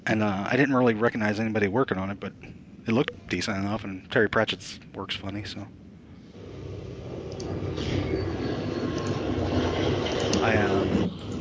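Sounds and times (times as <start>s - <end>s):
speech: 0.0s - 5.8s, 10.4s - 11.0s
train rumbling past: 6.3s - 11.3s.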